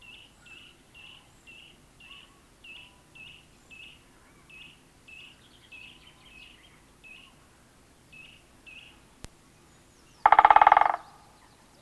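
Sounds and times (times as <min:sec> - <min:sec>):
great spotted woodpecker giving sharp high kik calls in Sweden: 0:10.2 - 0:11.4.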